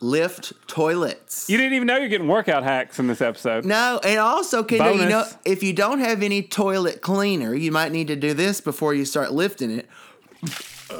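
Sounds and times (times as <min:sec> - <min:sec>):
speech: 0:00.0 - 0:10.9
Coca-Cola being poured and fizzing: 0:10.3 - 0:10.9.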